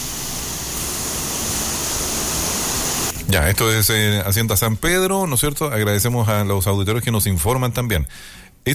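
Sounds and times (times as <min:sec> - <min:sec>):
rushing floodwater of an overflowing river roaring: 0:00.0 - 0:03.1
speech: 0:03.3 - 0:08.7.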